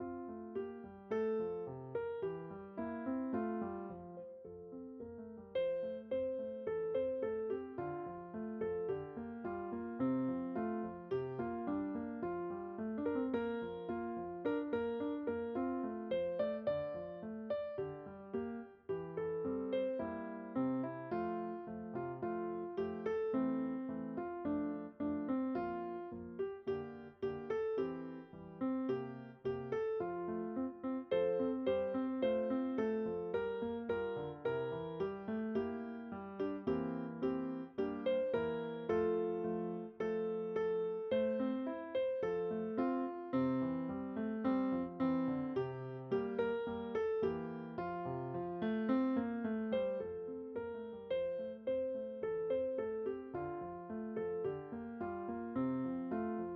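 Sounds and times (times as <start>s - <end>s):
electric piano: 0.0s - 56.5s.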